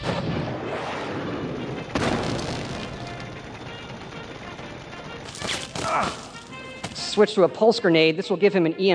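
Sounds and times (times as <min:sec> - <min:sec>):
missile launcher fire in a post-apocalyptic video game: 0:00.0 - 0:03.9
dense mechanical rumble: 0:00.0 - 0:05.4
speech: 0:07.2 - 0:08.9.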